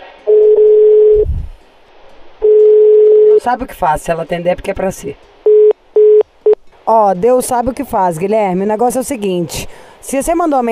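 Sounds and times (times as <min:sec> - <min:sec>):
telephone ringback tone while placing a call: 0:00.3 - 0:01.2, 0:02.4 - 0:03.4, 0:05.5 - 0:06.6
speech: 0:03.4 - 0:05.4, 0:06.9 - 0:10.6.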